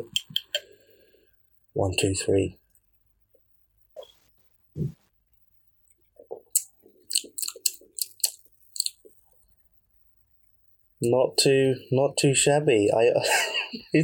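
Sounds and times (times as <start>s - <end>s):
speech: 1.8s - 2.6s, 11.0s - 14.0s
person sipping espresso: 6.2s - 9.1s.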